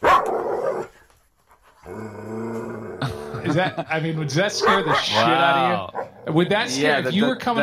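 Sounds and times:
dog barking: 0:00.0 - 0:00.9, 0:04.6 - 0:05.3, 0:05.9 - 0:06.2
laughter: 0:03.0 - 0:05.9
speech: 0:03.5 - 0:07.6.

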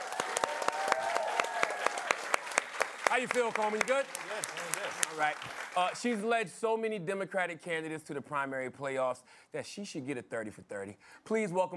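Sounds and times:
audience whoops of cheering: 0:00.0 - 0:02.4
audience applause: 0:00.0 - 0:06.1
speech: 0:03.1 - 0:11.7.

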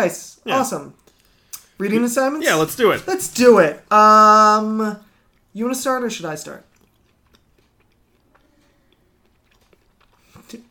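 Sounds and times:
speech: 0:00.0 - 0:01.0, 0:01.8 - 0:06.7
low hum: 0:00.0 - 0:10.6
person chewing with mouth clicks and wet smacks: 0:05.1 - 0:05.5, 0:06.6 - 0:10.6.

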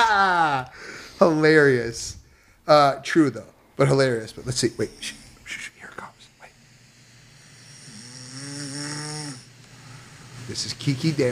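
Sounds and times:
faint hiss: 0:00.4 - 0:11.3
speech: 0:00.6 - 0:06.1, 0:10.5 - 0:11.3
person snoring: 0:07.4 - 0:10.2.

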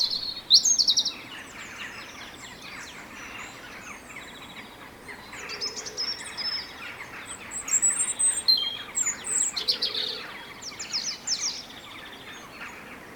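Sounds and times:
jackdaws calling: 0:00.0 - 0:00.5
robin singing thin high scratchy phrases: 0:00.0 - 0:04.6, 0:05.2 - 0:12.4
birds: 0:00.0 - 0:13.0.

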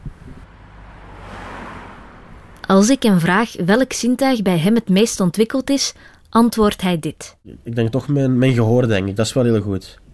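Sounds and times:
bus passing whoosh on the street: 0:00.0 - 0:03.5
bus engine drone passing on the street: 0:00.0 - 0:04.3
speech: 0:02.7 - 0:10.0.

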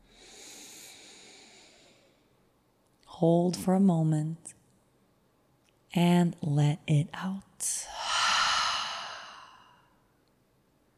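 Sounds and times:
slow deep breath in through the nose: 0:00.0 - 0:02.3, 0:07.9 - 0:10.0
speech: 0:03.2 - 0:04.6, 0:06.0 - 0:08.0.

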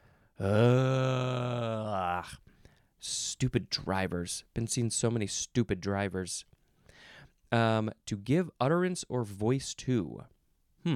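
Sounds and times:
speech: 0:00.4 - 0:01.0, 0:03.0 - 0:06.5, 0:07.5 - 0:10.9
person groaning: 0:00.4 - 0:02.4.

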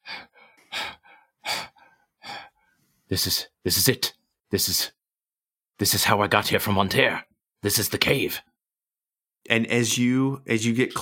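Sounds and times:
loud heavy labored breathing: 0:00.0 - 0:03.1
speech: 0:03.1 - 0:05.0, 0:05.8 - 0:08.5, 0:09.4 - 0:11.0.

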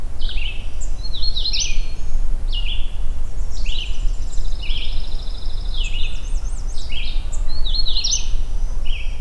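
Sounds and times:
magnolia warbler singing on an overcast morning: 0:00.2 - 0:09.2.

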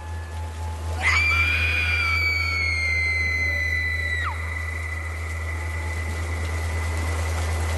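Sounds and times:
constant low rumble: 0:00.0 - 0:07.7
heavy rain at a harbour: 0:00.0 - 0:07.7
steady hiss: 0:00.0 - 0:07.7
eerie scream from the assembly hall: 0:01.0 - 0:05.4.

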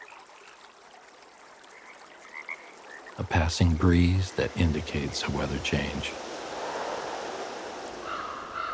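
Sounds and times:
speech: 0:03.2 - 0:06.3
tide waves washing on shore: 0:03.3 - 0:08.7
faint bird call: 0:08.0 - 0:08.7.

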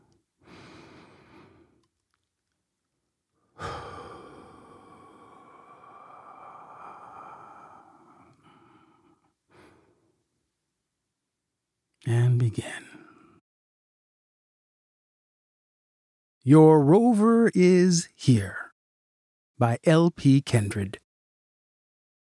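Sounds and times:
person taking one deep slow breath: 0:00.0 - 0:01.8, 0:03.4 - 0:10.2
speech: 0:12.1 - 0:12.9, 0:16.5 - 0:18.6, 0:19.6 - 0:21.0.

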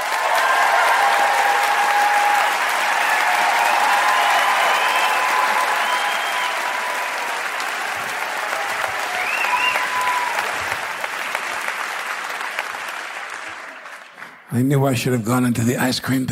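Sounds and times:
faint audience cheers: 0:00.0 - 0:11.7
live audience clapping: 0:00.0 - 0:14.7
audience whistles: 0:03.6 - 0:06.9, 0:09.1 - 0:10.4
speech: 0:14.6 - 0:16.3.

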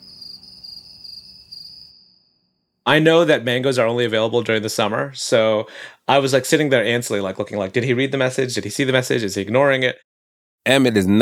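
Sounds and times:
crickets chirping: 0:00.0 - 0:02.7
speech: 0:02.9 - 0:11.1.

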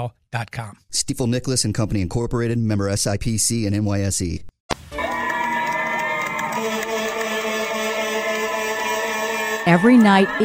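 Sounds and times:
speech: 0:00.0 - 0:04.5, 0:09.7 - 0:10.4
New Yorkers cheering and clapping to celebrate healthcare workers: 0:04.8 - 0:10.4
bells ringing: 0:05.0 - 0:10.4.

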